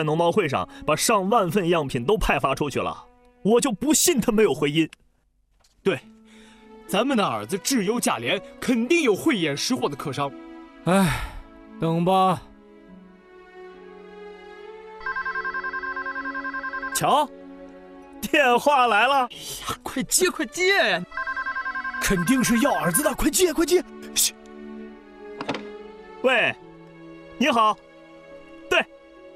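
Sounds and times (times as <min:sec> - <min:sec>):
speech: 0:00.0 - 0:05.0, 0:05.8 - 0:06.1, 0:06.9 - 0:12.5, 0:17.0 - 0:17.4, 0:18.2 - 0:21.3, 0:22.0 - 0:24.4, 0:26.2 - 0:26.6, 0:27.4 - 0:27.9, 0:28.7 - 0:28.9
telephone ringing with a steady electronic tone: 0:15.0 - 0:17.2, 0:21.1 - 0:23.2.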